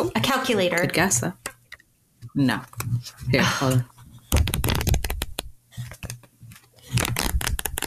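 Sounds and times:
speech: 0.5 - 1.5, 2.4 - 4.5
pages of a small book from 1913 flipping: 2.2 - 7.8.

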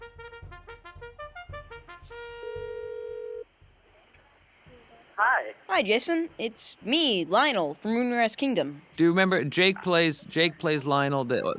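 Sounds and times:
phone ring tone: 2.7 - 3.4
speech: 5.2 - 11.5.

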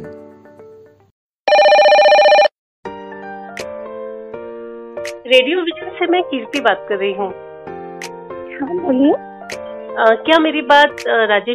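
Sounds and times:
electronic telephone ring for an incoming call to a radio phone-in: 1.5 - 2.5
speech: 5.3 - 7.4, 8.6 - 9.3, 10.0 - 11.5.

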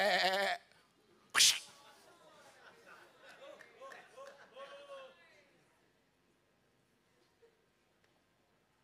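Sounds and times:
person loudly imitating a sheep bleating: 0.0 - 0.7.

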